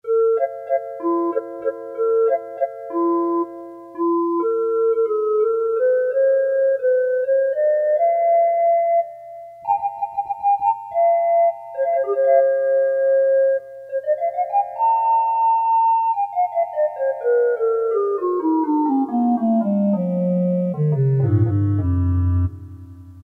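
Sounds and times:
Casio MT-500 keyboard panpipe tone: 0.0 - 23.2.

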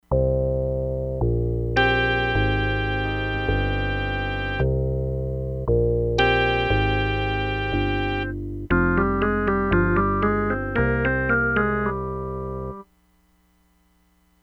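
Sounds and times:
organ bass pedal square wave: 0.1 - 12.8.

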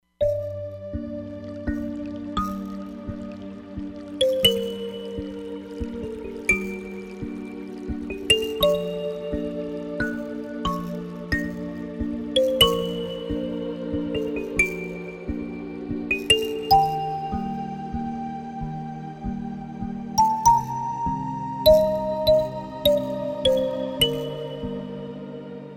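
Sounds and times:
quiet river synthesized on a Roland Fantom XR: 0.2 - 25.7.

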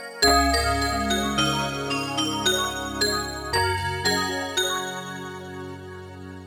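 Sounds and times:
glass chimes on a Yamaha TX16W: 0.2 - 5.1.

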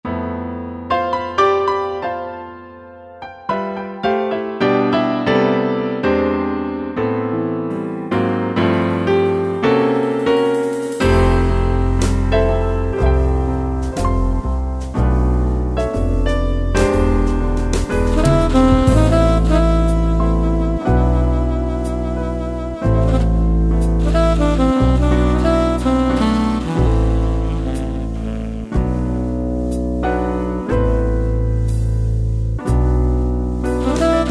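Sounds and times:
modern swing and jazz ballad: 0.1 - 34.2.

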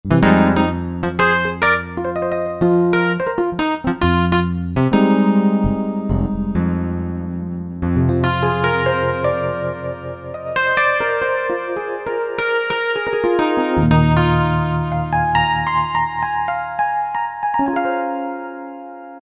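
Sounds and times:
Suitcase 88 and Alesis Z4 vintage electric keyboards: 0.0 - 19.2.

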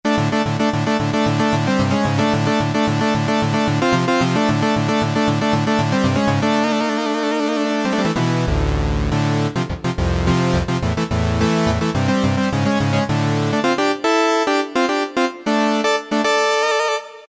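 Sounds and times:
trance synthesizer: 0.1 - 7.0, 7.8 - 16.4.

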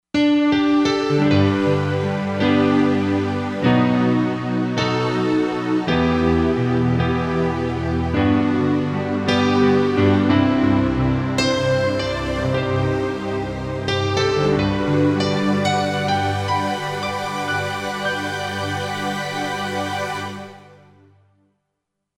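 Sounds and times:
piano string: 0.2 - 21.0.

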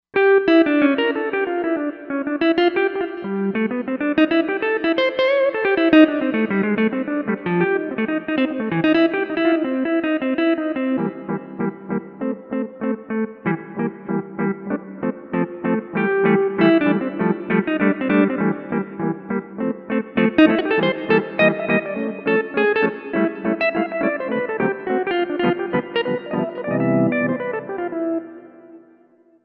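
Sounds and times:
lead guitar: 0.2 - 29.1
synth: 11.0 - 29.0.

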